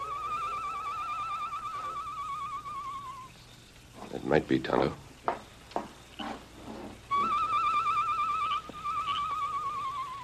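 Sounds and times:
night bird calling outside a barred jail-cell window: 0.0s - 3.9s, 7.0s - 10.2s
faint hiss: 0.0s - 10.2s
speech: 4.2s - 5.0s.

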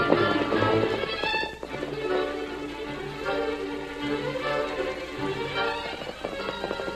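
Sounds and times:
horses galloping: 0.0s - 6.9s
sustained instrumental music: 0.0s - 6.9s.

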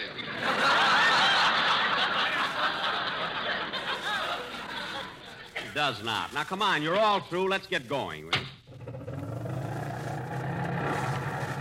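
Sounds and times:
laughter: 0.0s - 6.0s
speech: 5.8s - 8.5s
old car engine running with rough sputtering drone: 8.6s - 11.5s.

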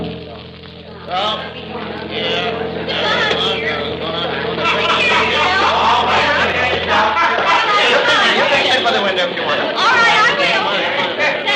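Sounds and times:
busy crowd chattering and murmuring: 0.0s - 11.5s
speech: 1.1s - 2.4s
bus engine rumbling as it pulls in: 1.6s - 8.4s
laughter: 2.5s - 11.5s.

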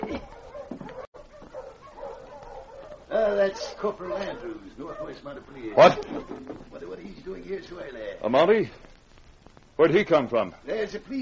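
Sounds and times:
dog barking and yipping: 0.0s - 6.5s
speech: 3.4s - 9.0s, 9.8s - 11.1s
laughter: 4.4s - 7.4s.

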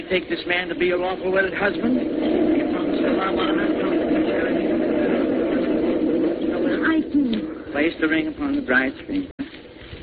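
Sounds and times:
speech: 0.1s - 2.4s, 3.0s - 4.1s, 7.0s - 9.3s
steady loud rumbling roar: 0.8s - 7.9s.

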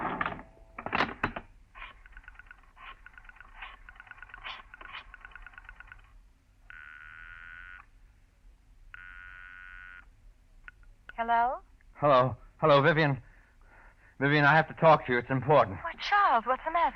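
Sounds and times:
telephone rotary dial clicking in a phone booth: 1.8s - 6.1s
ringing tone through a telephone line: 3.1s - 7.9s, 8.9s - 10.1s
speech: 11.2s - 13.3s, 14.2s - 16.9s.

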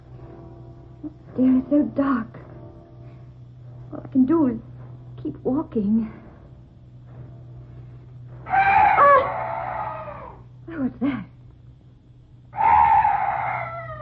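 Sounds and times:
low steady hum: 0.0s - 14.0s
speech: 1.0s - 2.4s, 4.1s - 6.2s, 10.8s - 11.3s
night bird calls as harsh drawn-out screeches: 8.4s - 10.5s, 12.6s - 14.0s.

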